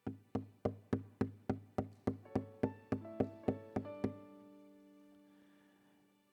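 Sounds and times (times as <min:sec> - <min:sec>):
knocking on a door: 0:00.0 - 0:04.2.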